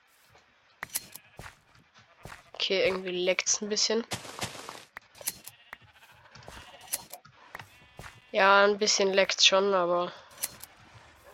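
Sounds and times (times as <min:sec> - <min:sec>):
short sheep bleats from a video game: 0:01.0 - 0:03.4, 0:05.3 - 0:09.4
speech: 0:02.6 - 0:04.3, 0:08.4 - 0:10.2
busy clicky video game noise: 0:05.0 - 0:05.9, 0:06.5 - 0:07.7.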